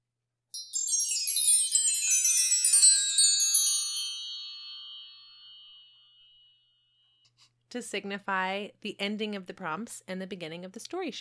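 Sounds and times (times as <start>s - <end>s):
wind chime ringing: 0.5s - 6.8s
speech: 7.7s - 11.1s.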